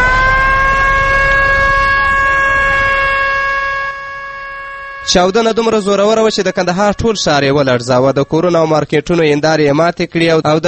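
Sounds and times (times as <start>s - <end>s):
ambulance siren after a bombing in Kandahar: 0.0s - 8.8s
speech: 5.1s - 10.6s.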